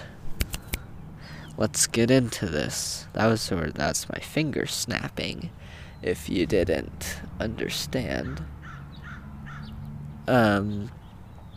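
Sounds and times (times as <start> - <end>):
low steady outdoor hum where cars go by: 0.0 - 11.5
speech: 1.6 - 8.6, 10.3 - 11.0
bird squawking outdoors: 8.1 - 9.8.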